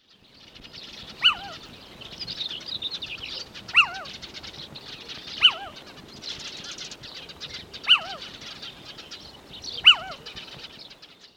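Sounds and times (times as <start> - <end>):
little owl calling: 1.1 - 1.7, 3.2 - 4.2, 5.4 - 5.9, 7.8 - 8.7, 9.7 - 10.4.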